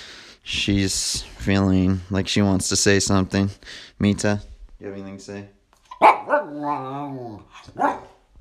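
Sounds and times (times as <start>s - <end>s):
speech: 0.6s - 8.1s
dog yelping and barking: 5.9s - 6.9s, 7.6s - 8.2s.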